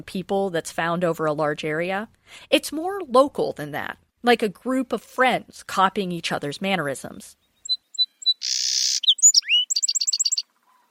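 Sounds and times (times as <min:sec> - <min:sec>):
speech: 0:00.0 - 0:07.4
song sparrow singing: 0:07.4 - 0:10.8.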